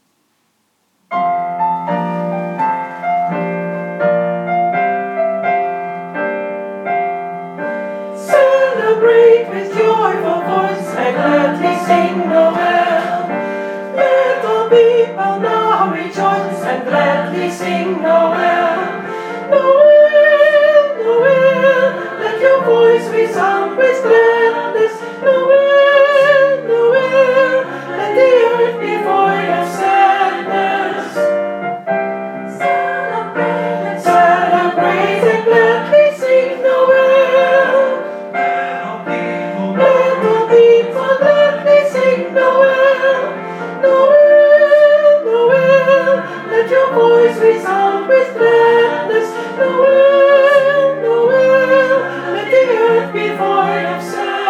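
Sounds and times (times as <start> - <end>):
soprano singing: 1.1 - 54.4.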